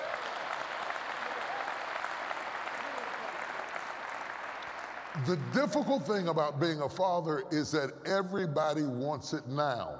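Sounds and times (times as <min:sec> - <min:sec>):
crowd applauding: 0:00.0 - 0:06.6
speech: 0:05.2 - 0:09.9.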